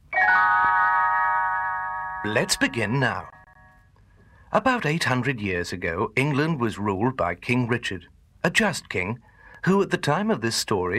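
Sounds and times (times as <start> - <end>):
little bells chiming page-turn cue: 0.2 - 3.7
speech: 2.2 - 3.4, 4.5 - 10.9.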